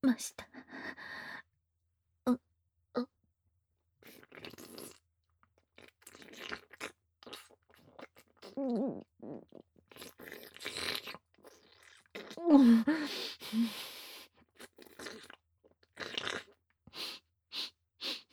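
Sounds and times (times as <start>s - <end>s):
speech: 0.0s - 1.2s, 2.3s - 3.1s, 8.6s - 9.4s, 12.4s - 13.8s
wet chewing of food: 4.0s - 5.0s, 5.8s - 12.4s, 14.3s - 17.2s.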